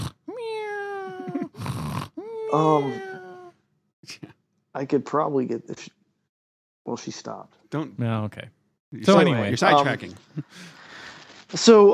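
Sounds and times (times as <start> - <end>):
cat snoring loudly: 1.6 - 2.2
speech: 2.5 - 3.1, 4.0 - 6.0, 6.8 - 10.8, 11.5 - 11.9.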